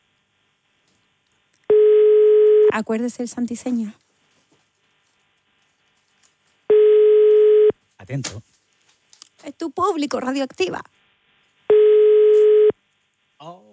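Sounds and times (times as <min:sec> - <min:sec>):
telephone line tone: 0:01.7 - 0:02.8, 0:06.7 - 0:07.7, 0:11.7 - 0:12.8
speech: 0:02.8 - 0:04.0, 0:08.1 - 0:08.5, 0:09.6 - 0:11.0.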